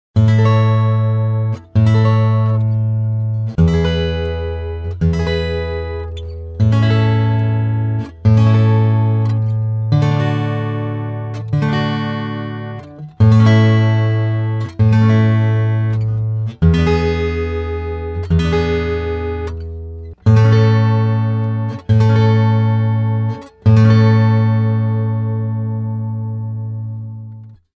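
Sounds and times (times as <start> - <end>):
D-35 acoustic guitar: 0.2 - 27.7.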